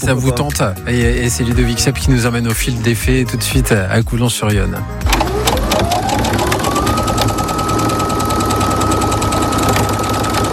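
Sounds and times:
speech: 0.0s - 5.3s
sewing machine running in a boutique workshop in Coulanges-sur-Yonne: 5.0s - 10.5s.

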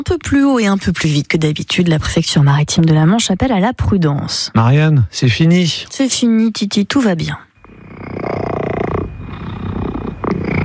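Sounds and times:
speech: 0.0s - 7.5s
two-year-old cat purring: 7.6s - 10.6s.

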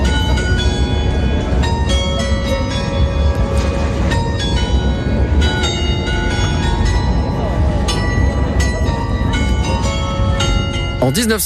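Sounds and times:
belfry carillon bells playing a patriotic march: 0.0s - 11.4s
low rumble of outdoor noise: 0.0s - 11.4s.

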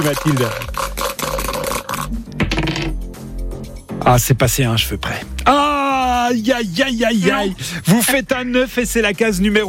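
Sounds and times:
speech: 0.0s - 0.8s, 4.1s - 5.7s, 6.3s - 9.6s
dice rolled in a game rattling across a hard surface: 0.0s - 2.9s.

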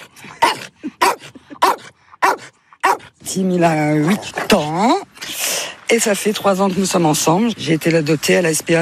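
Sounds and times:
dog's soft little yelps: 0.0s - 3.1s
8-year-old dog barking: 0.4s - 3.1s
speech: 3.3s - 5.1s, 5.9s - 8.8s.

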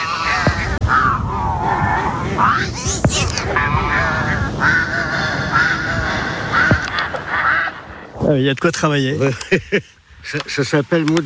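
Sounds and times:
flock of ducks quacking: 0.0s - 8.1s
speech: 8.3s - 11.2s.

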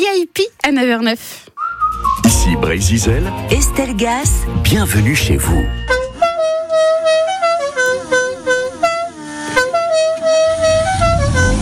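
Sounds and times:
speech: 0.0s - 1.5s, 2.4s - 6.0s
van engine rumbling: 2.0s - 11.6s
traveling merchant's van horn honking a jaunty melodic pattern: 5.6s - 11.6s.

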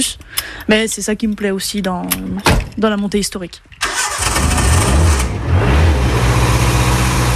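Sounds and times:
speech: 0.0s - 3.8s
vintage Beetle car engine revving at a historic hill-climb event: 3.9s - 7.3s.

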